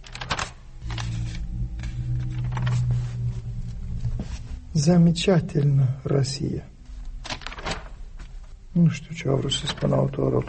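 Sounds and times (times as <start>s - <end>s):
guestbook pages being turned and handled: 0.0s - 4.6s, 6.9s - 8.6s, 9.4s - 10.4s
steady low hum: 0.6s - 8.7s
speech: 4.8s - 6.7s, 8.8s - 10.4s.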